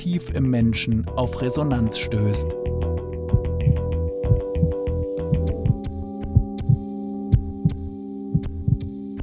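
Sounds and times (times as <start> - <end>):
speech: 0.0 - 2.7
heartbeat as heard in the womb: 3.3 - 8.9.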